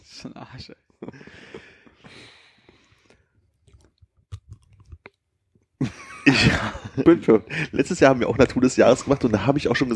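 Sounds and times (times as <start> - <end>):
speech: 0.2 - 2.2, 6.6 - 9.9
person chewing a donut: 1.1 - 5.8
laughter: 5.8 - 7.9.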